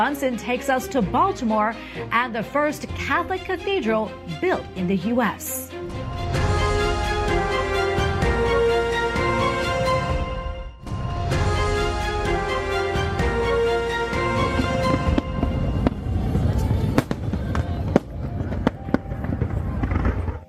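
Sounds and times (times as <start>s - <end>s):
speech: 0.0s - 5.9s
steady tonal backdrop: 0.0s - 17.3s
Independence Day fireworks popping and booming: 14.2s - 20.4s.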